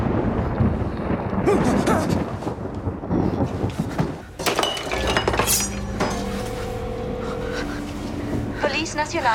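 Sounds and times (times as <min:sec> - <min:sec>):
rumbling thunder: 0:00.0 - 0:07.3
steady electrical hums and tones: 0:04.4 - 0:09.3
wavering whine: 0:04.9 - 0:09.3.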